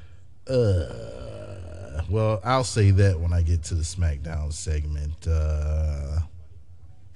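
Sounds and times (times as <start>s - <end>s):
speech: 0.5s - 1.0s, 2.1s - 6.3s
stomach growling: 0.5s - 2.1s.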